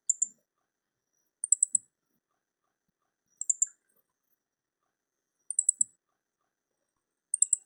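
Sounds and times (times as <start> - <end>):
hoojiro bird: 0.0 - 4.4, 5.4 - 6.5, 7.3 - 7.6.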